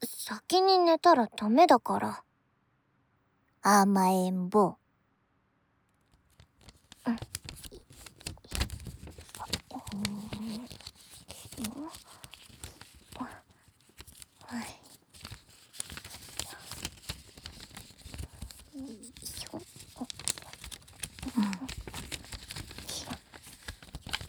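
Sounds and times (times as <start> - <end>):
speech: 0.3 - 2.3, 3.6 - 4.8, 7.1 - 7.4
paper being folded into an origami crane: 6.1 - 24.2.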